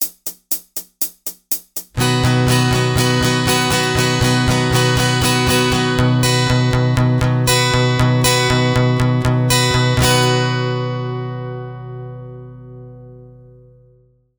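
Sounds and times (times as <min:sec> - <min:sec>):
bass-treble guitar strumming with capo on fourth fret: 0:02.0 - 0:14.1.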